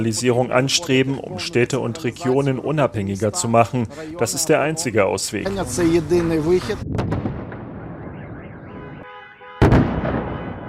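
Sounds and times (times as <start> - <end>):
speech: 0.0 - 7.2
heavy explosions during an air strike: 5.5 - 9.0, 9.6 - 10.6.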